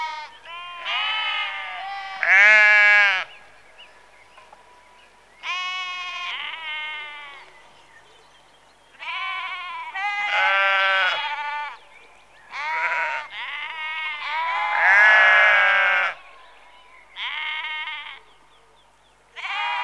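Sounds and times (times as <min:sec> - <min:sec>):
sheep bleating in a rural setting: 0:00.0 - 0:03.3, 0:05.4 - 0:07.5, 0:09.0 - 0:11.8, 0:12.5 - 0:16.3, 0:17.2 - 0:18.2, 0:19.4 - 0:19.8.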